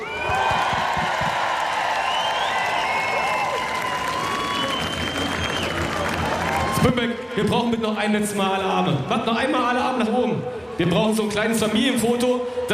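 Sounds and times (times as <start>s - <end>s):
people whooping: 0.0s - 7.1s
live crowd cheering and applauding at a stage event: 0.0s - 7.6s
speech: 6.8s - 12.7s.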